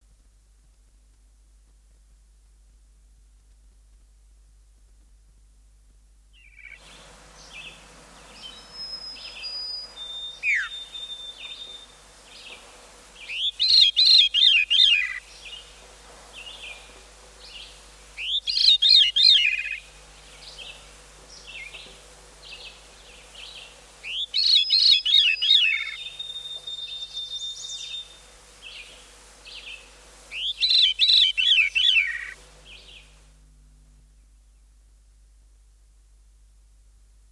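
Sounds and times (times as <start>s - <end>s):
veery singing: 6.3s - 33.3s.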